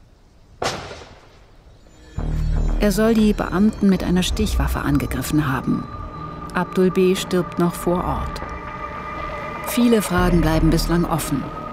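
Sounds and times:
gunshots fired by SEK special police officers in an allotment garden colony in Berlin-Spandau: 0:00.6 - 0:01.5
speech: 0:02.8 - 0:06.0, 0:06.6 - 0:08.5, 0:09.7 - 0:11.6.

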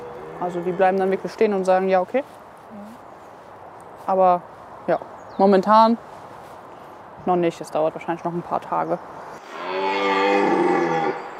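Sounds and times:
red deer stag roaring during the rut in a wildlife park: 0:00.0 - 0:01.3, 0:09.4 - 0:11.3
speech: 0:00.4 - 0:02.9, 0:04.0 - 0:06.1, 0:07.2 - 0:09.2.

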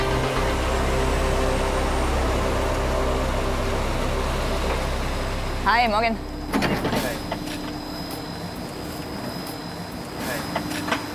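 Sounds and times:
large truck idling at a construction site: 0:00.0 - 0:10.2
speech: 0:05.7 - 0:06.8
metallic clanks at a construction site: 0:06.4 - 0:08.4.

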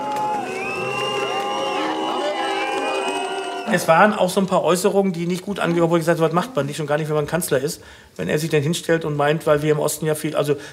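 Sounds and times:
large crowd whistling at an election campaign appearance on the coast: 0:00.0 - 0:04.2
speech: 0:03.7 - 0:10.7.

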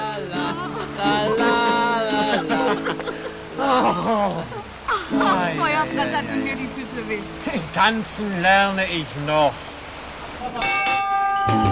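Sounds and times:
laughter: 0:00.2 - 0:06.5
speech: 0:05.8 - 0:09.7
bell ringing to open Christmas market: 0:10.6 - 0:11.7.

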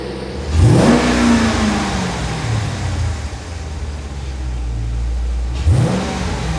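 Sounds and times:
car engine revving: 0:00.0 - 0:06.5.

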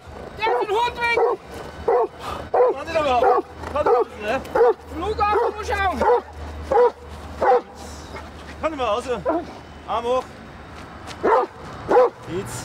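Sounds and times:
giant schnauzer guard dog barking aggressively on airport grounds: 0:00.4 - 0:08.3, 0:09.2 - 0:09.5, 0:11.2 - 0:12.2.

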